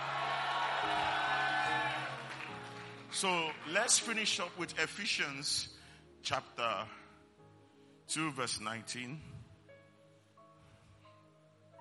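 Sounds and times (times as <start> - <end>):
audience shouting praise and cheering: 0.0 - 2.7
speech: 3.2 - 7.0, 8.1 - 9.4.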